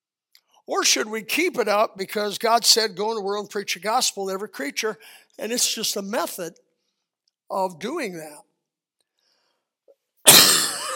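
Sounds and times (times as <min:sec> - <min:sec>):
speech: 0:00.7 - 0:06.7, 0:07.5 - 0:08.5
person coughing into the microphone: 0:10.3 - 0:10.9.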